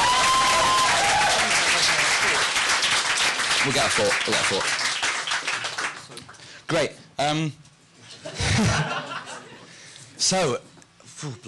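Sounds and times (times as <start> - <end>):
audience applause: 0.0 - 6.2
speech: 3.6 - 4.9, 6.7 - 7.6, 8.2 - 9.1, 10.2 - 11.4
laughter: 8.1 - 9.7.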